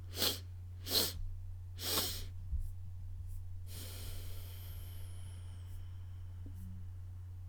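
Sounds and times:
long exhale through the nose: 0.0 - 1.2, 1.8 - 2.3, 3.7 - 6.6
quick sniffing breaths through the nose during a breathing exercise: 0.0 - 1.2, 1.8 - 2.4, 3.7 - 5.9
low constant hum: 0.0 - 7.4.

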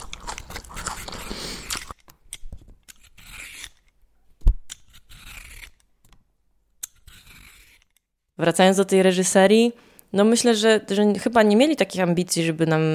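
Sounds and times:
crisp carrot being bitten and crunched: 0.0 - 8.0
speech: 8.4 - 12.9.

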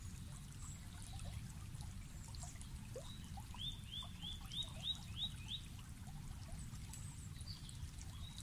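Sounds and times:
small stream of clear water trickling: 0.0 - 8.4.

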